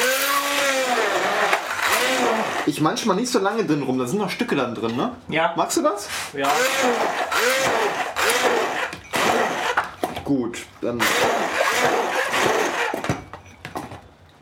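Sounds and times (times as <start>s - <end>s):
hand blender puréeing tomatoes: 0.0s - 2.7s, 6.4s - 9.9s, 11.0s - 13.2s
speech: 2.6s - 8.1s, 10.3s - 12.0s.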